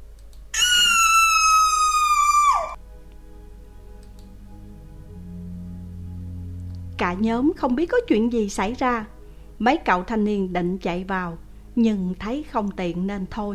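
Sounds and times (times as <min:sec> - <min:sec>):
low hum: 0:00.0 - 0:13.5
woman screaming loudly: 0:00.6 - 0:02.8
speech: 0:07.1 - 0:13.5.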